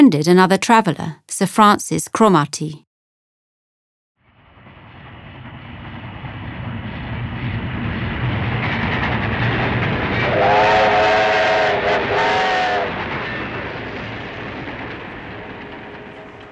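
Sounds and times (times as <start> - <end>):
speech: 0.0 - 2.8
train rumbling along rails in India: 4.6 - 16.5.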